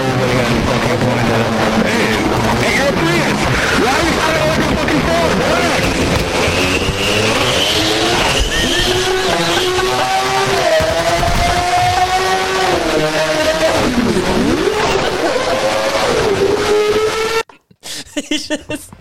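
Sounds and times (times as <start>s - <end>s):
Formula One race car engine revving: 0.0s - 17.5s
burst of noise: 0.7s - 16.5s
laughter: 7.9s - 16.1s, 17.8s - 18.9s.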